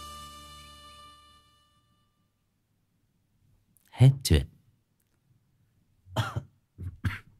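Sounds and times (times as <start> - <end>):
speech: 4.0 - 4.5
person coughing: 6.1 - 7.3.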